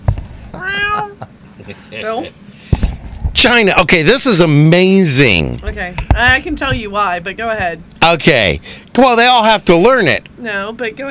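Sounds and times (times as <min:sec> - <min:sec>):
low rumble: 0:00.0 - 0:11.0
cat meowing: 0:00.6 - 0:01.2
speech: 0:01.0 - 0:02.4, 0:03.4 - 0:11.0.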